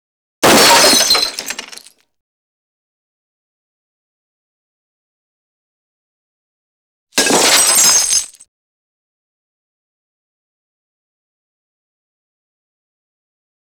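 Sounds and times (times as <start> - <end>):
medium-thick glass: 0.4 - 1.9, 7.2 - 8.4.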